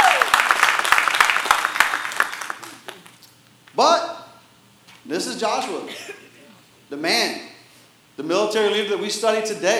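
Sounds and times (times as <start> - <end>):
church audience applauding during a morning service: 0.0 - 3.2
speech: 5.2 - 6.2, 6.9 - 7.5, 8.2 - 9.7.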